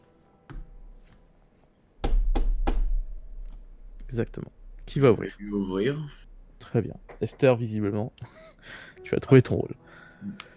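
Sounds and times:
knocking on a door: 0:02.0 - 0:03.0
speech: 0:04.1 - 0:10.5.

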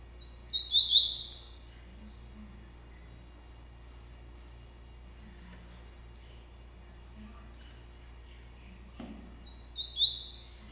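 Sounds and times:
double-collared seedeater song: 0:00.2 - 0:01.9, 0:09.4 - 0:10.6.

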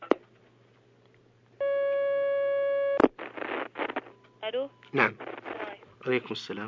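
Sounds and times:
electronic telephone line tone of an incoming call: 0:01.6 - 0:03.1
speech: 0:04.5 - 0:05.4, 0:06.0 - 0:06.6.

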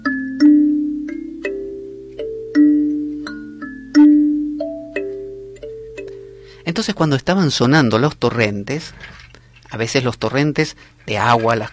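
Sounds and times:
golden lyre plucked notes in a slow melodic run: 0:00.0 - 0:06.6
speech: 0:06.8 - 0:11.7.

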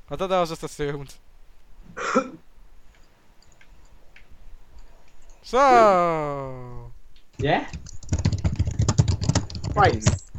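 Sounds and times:
speech: 0:00.1 - 0:01.3, 0:01.9 - 0:02.4, 0:05.4 - 0:06.8, 0:07.4 - 0:07.9, 0:09.8 - 0:10.2
typing on a computer keyboard: 0:07.7 - 0:10.3.

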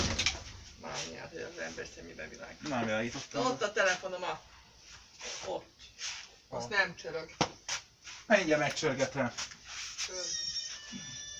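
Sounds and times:
speech: 0:01.7 - 0:04.5, 0:05.2 - 0:07.6, 0:08.3 - 0:11.2
little cat meowing: 0:10.1 - 0:11.3.

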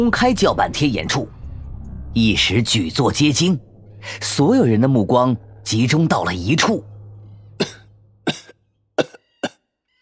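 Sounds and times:
speech: 0:00.0 - 0:01.4, 0:02.1 - 0:06.9
sickly-sounding man coughing low dry coughs: 0:07.6 - 0:09.7.

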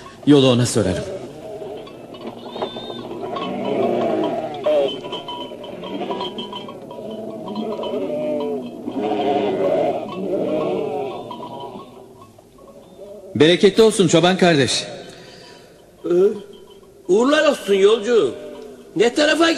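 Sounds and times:
speech: 0:00.2 - 0:01.2, 0:13.4 - 0:15.0, 0:17.7 - 0:19.5
flock of sheep bleating: 0:01.0 - 0:12.1.

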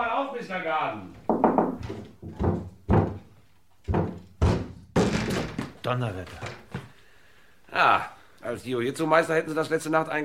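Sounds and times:
speech: 0:00.2 - 0:01.2, 0:01.8 - 0:02.5, 0:05.9 - 0:06.6, 0:07.7 - 0:10.2
locked wardrobe door forced open from inside with heavy thumps and knocks: 0:01.2 - 0:05.8.

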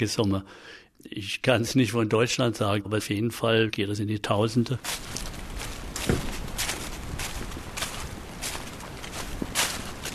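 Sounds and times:
speech: 0:00.0 - 0:05.3
footsteps on rocky ground climbing to a rocky summit: 0:04.8 - 0:10.1
rushing hiss of a rain shower: 0:04.8 - 0:10.1.

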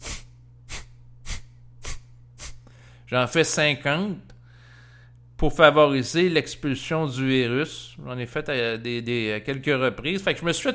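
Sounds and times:
rapid forceful exhalations through the nose from someone standing bent forward: 0:00.0 - 0:03.0
speech: 0:03.1 - 0:04.3, 0:05.4 - 0:10.7.

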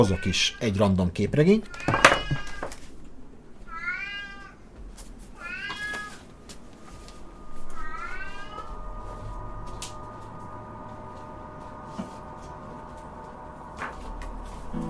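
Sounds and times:
speech: 0:00.0 - 0:02.4
steady low noise: 0:00.0 - 0:14.8
cat meowing: 0:01.7 - 0:02.8, 0:03.7 - 0:04.6, 0:05.3 - 0:06.3, 0:07.7 - 0:08.7.

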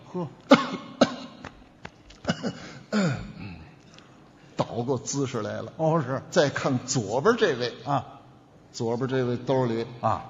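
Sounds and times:
speech: 0:00.1 - 0:00.9, 0:02.4 - 0:03.3, 0:04.8 - 0:10.2
performer fake coughing during a comic routine: 0:00.2 - 0:01.4, 0:02.2 - 0:03.6
performer making soft throaty vocal noises: 0:02.9 - 0:03.8.

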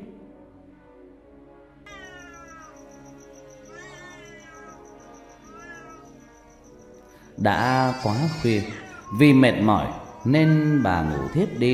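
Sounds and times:
cat meowing at night: 0:01.9 - 0:06.6, 0:07.7 - 0:11.7
speech: 0:07.4 - 0:11.7.

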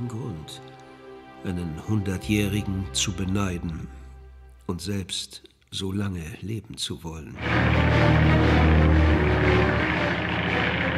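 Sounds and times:
speech: 0:00.0 - 0:00.8, 0:01.4 - 0:04.0, 0:04.7 - 0:10.8
propeller aircraft engine droning as it comes in to land: 0:07.4 - 0:10.9.

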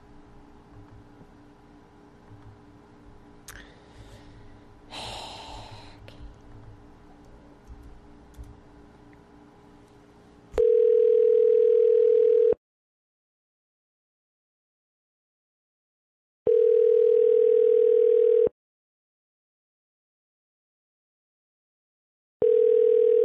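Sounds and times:
telephone dial tone: 0:10.6 - 0:12.6, 0:16.5 - 0:18.5, 0:22.4 - 0:23.2.

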